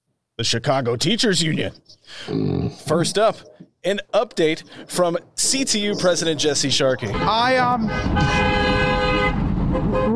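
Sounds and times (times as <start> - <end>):
speech: 0.4 - 8.9
truck horn blaring on the street: 7.1 - 10.1.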